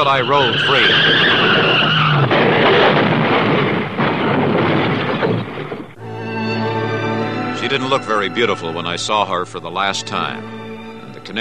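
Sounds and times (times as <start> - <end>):
speech: 0.0 - 2.8, 7.6 - 10.6, 11.3 - 11.4
car skidding across gravel: 0.0 - 5.9
car engine whine: 0.0 - 11.3.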